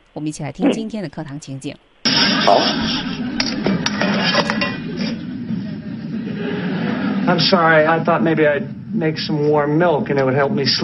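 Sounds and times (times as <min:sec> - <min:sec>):
low hum: 0:00.0 - 0:10.8
speech: 0:00.2 - 0:03.6, 0:07.3 - 0:10.8
laughter: 0:02.1 - 0:09.0
metal pot clattering onto a hard kitchen floor: 0:03.4 - 0:05.2.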